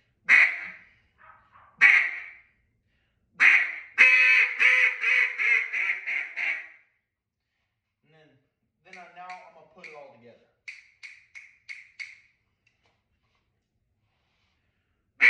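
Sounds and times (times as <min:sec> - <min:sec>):
duck quacking: 0:00.3 - 0:02.4, 0:03.4 - 0:06.8.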